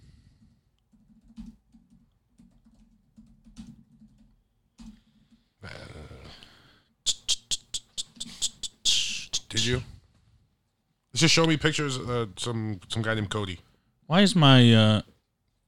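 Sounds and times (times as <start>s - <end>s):
typing a search on a computer keyboard: 0.7s - 5.4s
speech: 9.6s - 9.9s, 11.2s - 15.1s.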